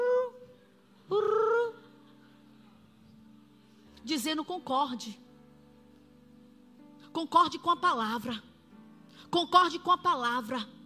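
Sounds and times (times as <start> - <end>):
person imitating the coo of a sick black pigeon: 1.1 - 1.9
speech: 4.0 - 5.2, 7.2 - 8.5, 9.2 - 10.8.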